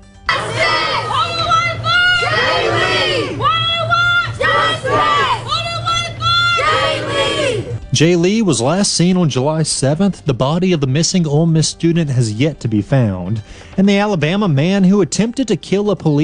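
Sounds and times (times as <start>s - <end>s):
large crowd of protesters chanting outside a courthouse in Lafayette County: 0.3s - 7.8s
low steady hum: 0.3s - 8.4s
speech: 8.0s - 16.2s.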